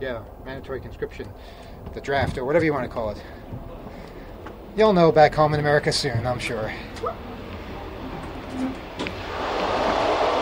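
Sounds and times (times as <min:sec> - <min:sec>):
speech: 0:00.0 - 0:03.7, 0:04.8 - 0:07.3
steady low rumble of a moving train carriage: 0:00.0 - 0:10.4.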